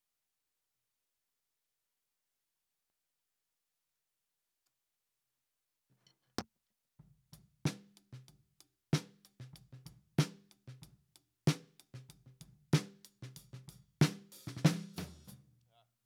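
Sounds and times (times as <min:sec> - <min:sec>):
snare drum recorded from top: 0:09.0 - 0:10.9, 0:11.5 - 0:15.4.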